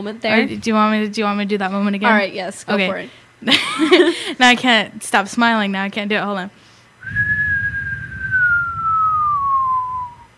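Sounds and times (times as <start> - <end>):
speech: 0.0 - 7.2
low rumble: 7.0 - 10.3
person whistling a falling tone imitating a falling whistle: 7.0 - 10.3.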